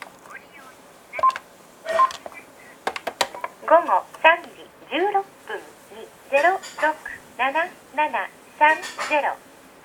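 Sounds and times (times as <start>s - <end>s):
light noise: 0.0s - 9.8s
telephone keypad beep from pressing the number 1 button: 1.2s - 2.2s
speech: 3.7s - 5.4s, 6.3s - 9.5s.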